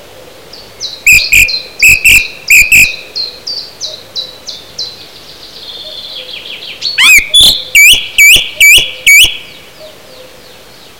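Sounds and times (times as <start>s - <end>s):
song thrush giving loud clear repeated notes: 1.0s - 4.0s, 6.9s - 10.0s.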